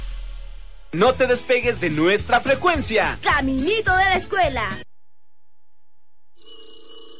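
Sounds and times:
speech: 0.9 - 4.9
telephone bell ringing: 6.3 - 7.1.

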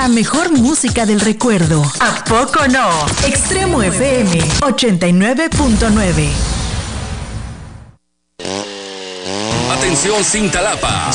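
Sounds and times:
speech: 0.0 - 6.6, 9.9 - 11.1
chainsaw revving: 8.4 - 11.1.

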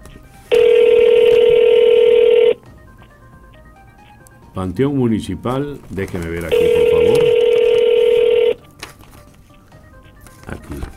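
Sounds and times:
ringback tone on an outgoing telephone call: 0.5 - 2.8, 6.5 - 8.6
speech: 4.6 - 6.8.

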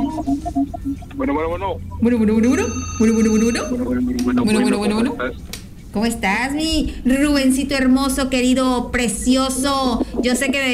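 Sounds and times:
telephone ringing with short electronic pulses: 0.0 - 5.2
speech: 0.9 - 10.7.

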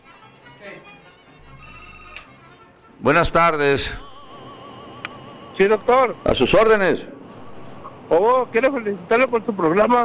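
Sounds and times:
low noise: 0.0 - 10.0
telephone ringing with electronic tone: 1.6 - 2.4, 3.7 - 6.6
speech: 3.0 - 4.1, 5.6 - 7.1, 8.1 - 10.0.

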